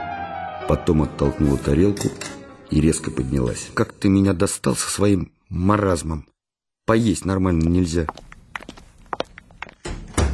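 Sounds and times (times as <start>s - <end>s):
speech: 0.7s - 6.3s, 6.9s - 8.3s
kitchen door slammed shut: 9.8s - 10.3s.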